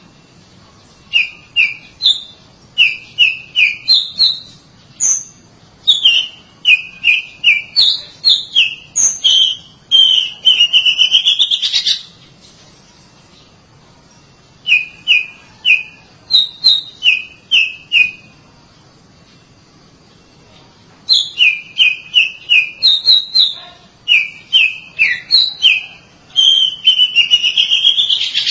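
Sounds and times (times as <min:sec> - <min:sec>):
Oriental magpie-robin song: 0:01.1 - 0:12.2, 0:14.6 - 0:18.4, 0:21.0 - 0:28.5.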